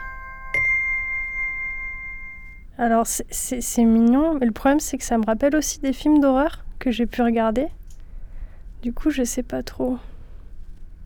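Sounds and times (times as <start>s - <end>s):
small baby's chime toy ringing: 0.0s - 2.6s
speech: 2.8s - 7.8s, 8.8s - 10.1s.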